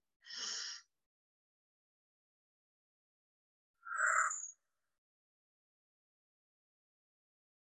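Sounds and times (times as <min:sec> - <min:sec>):
deep intake of breath in through the nose into the belly: 0:00.2 - 0:00.8
long breathy exhale out through the mouth: 0:00.3 - 0:00.8.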